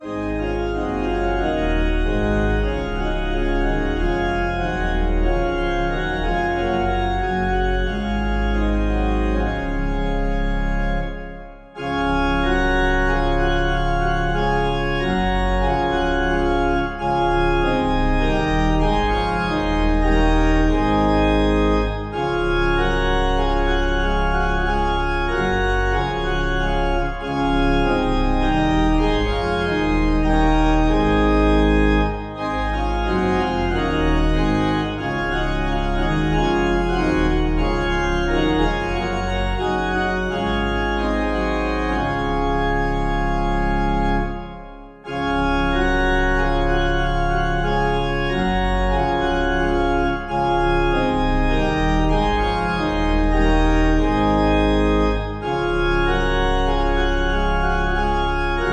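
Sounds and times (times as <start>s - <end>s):
organ playing a hymn: 0.0s - 58.7s.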